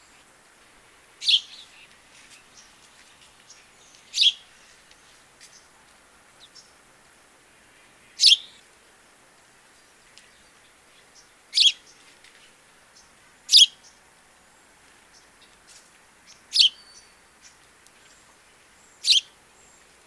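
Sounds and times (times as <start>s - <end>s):
common Eurasian backyard bird cheep calls: 1.2s - 1.9s, 3.9s - 4.6s, 7.9s - 8.6s, 19.0s - 19.4s.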